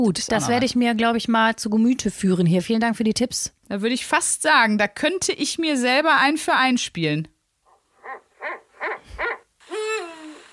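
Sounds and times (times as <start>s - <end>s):
speech: 0.0s - 7.3s
eagle owl hooting: 8.0s - 10.5s.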